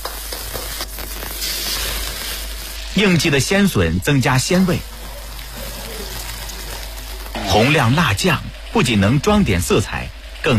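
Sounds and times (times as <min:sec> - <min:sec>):
pork belly sizzling in hot rapeseed oil in a wok: 0:00.0 - 0:03.5, 0:04.3 - 0:07.8
speech: 0:03.0 - 0:04.9, 0:07.6 - 0:10.5.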